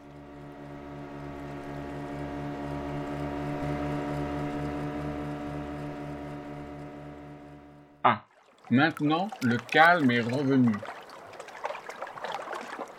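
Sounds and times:
motorboat engine droning across the water: 0:00.0 - 0:12.9
speech: 0:08.0 - 0:11.0.

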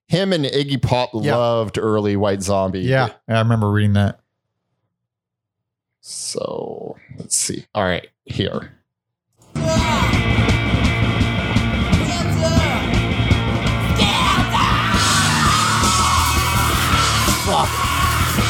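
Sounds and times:
speech: 0:00.1 - 0:04.2, 0:06.0 - 0:08.8
distorted rock guitars: 0:09.5 - 0:18.4
raw screamed male rock vocal: 0:09.6 - 0:10.4, 0:12.0 - 0:13.0, 0:13.8 - 0:18.4
pounding rock drums: 0:09.6 - 0:18.4.

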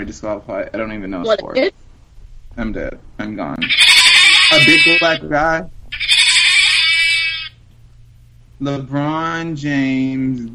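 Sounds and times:
speech: 0:00.0 - 0:01.9, 0:02.6 - 0:03.8, 0:04.5 - 0:05.8, 0:08.6 - 0:10.5
goat bleating: 0:03.6 - 0:05.2, 0:06.0 - 0:07.5.

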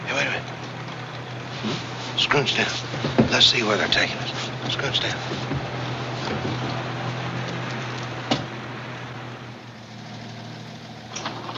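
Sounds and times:
tow truck engine idling: 0:00.0 - 0:11.5
faint knocks: 0:00.4 - 0:08.6
speech: 0:01.6 - 0:05.6.

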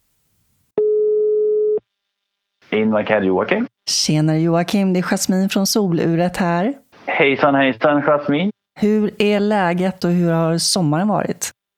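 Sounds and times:
telephone ringing tone as a call is placed to a partner company: 0:00.8 - 0:01.8
speech: 0:02.7 - 0:11.6.

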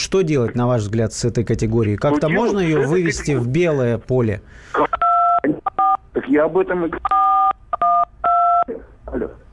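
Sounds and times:
speech: 0:00.0 - 0:05.0, 0:06.3 - 0:07.2
loud electronic dual-pitch dialing tones: 0:04.9 - 0:06.0, 0:07.0 - 0:08.7.

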